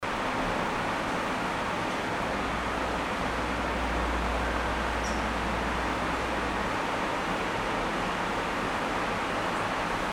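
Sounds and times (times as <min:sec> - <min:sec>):
air conditioner running: 0:00.0 - 0:10.1.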